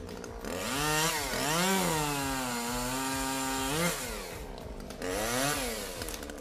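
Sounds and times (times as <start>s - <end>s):
chainsaw engine whining while cutting a tree: 0.0s - 6.3s.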